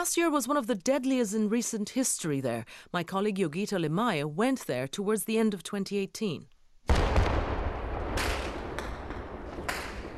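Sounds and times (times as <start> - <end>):
speech: 0.0 - 6.5
gunshots in an exchange of gunfire: 6.9 - 10.1.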